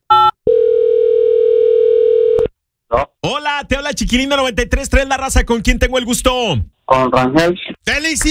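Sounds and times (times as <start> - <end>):
long steady telephone ringing tone: 0.1 - 2.5
speech: 3.6 - 8.2.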